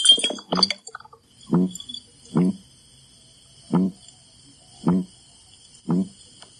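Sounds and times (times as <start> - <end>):
red-bellied piranha croaking grunts while held out of water: 1.5 - 2.6, 3.7 - 4.0, 4.8 - 5.1, 5.9 - 6.2.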